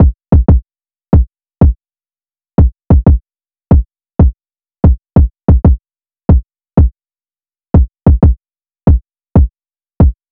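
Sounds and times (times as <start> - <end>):
RnB drum loop with kick at 93 BPM: 0.0 - 0.6, 1.2 - 1.8, 2.6 - 6.9, 7.8 - 10.2.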